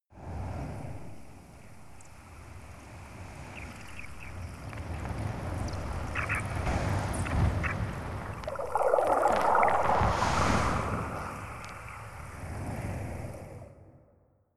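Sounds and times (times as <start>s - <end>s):
random water sound effects: 3.9s - 13.8s.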